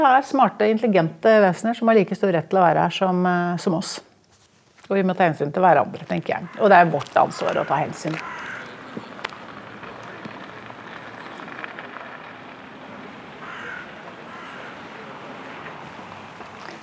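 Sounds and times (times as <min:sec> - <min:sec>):
speech: 0:00.0 - 0:04.1, 0:04.9 - 0:08.5
hissing outdoor possibly light rain: 0:00.0 - 0:16.8
crows cawing: 0:06.4 - 0:10.2, 0:13.4 - 0:15.3.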